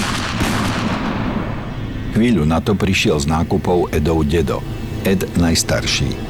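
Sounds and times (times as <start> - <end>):
loud dense continuous gunfire volley: 0.0 - 2.0
speech: 2.2 - 6.2.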